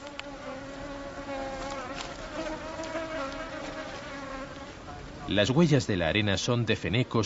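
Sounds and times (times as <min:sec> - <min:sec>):
several mosquitoes buzzing at the Waw an Namus crater oasis: 0:00.0 - 0:04.8
speech: 0:05.3 - 0:07.2.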